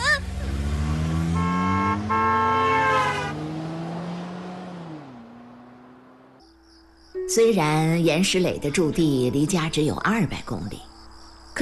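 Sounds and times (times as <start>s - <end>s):
car engine accelerating hard: 0.0s - 6.4s
speech: 7.4s - 10.9s.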